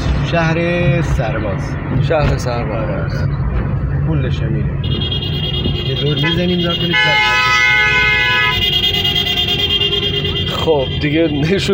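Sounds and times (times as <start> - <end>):
rumble of busy street traffic: 0.0 - 11.7
speech: 0.3 - 7.4, 10.6 - 11.7
sustained car horns blaring: 4.8 - 11.7.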